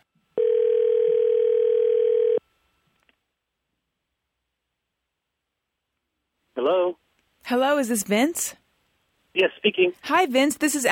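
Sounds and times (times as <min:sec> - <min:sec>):
telephone dial tone: 0:00.4 - 0:02.4
speech: 0:07.5 - 0:08.6, 0:09.4 - 0:10.8.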